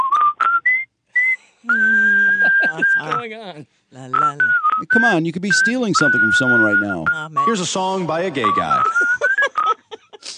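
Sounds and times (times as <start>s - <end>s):
person whistling a short bright tune: 0.0s - 3.2s, 4.2s - 7.8s, 8.4s - 9.5s
laughter: 1.7s - 3.3s, 7.5s - 10.3s
speech: 2.7s - 9.2s.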